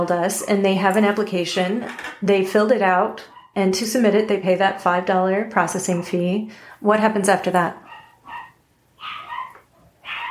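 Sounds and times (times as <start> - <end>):
speech: 0.0 - 7.8
puppies barking in high-pitched yappy bursts: 7.8 - 10.2.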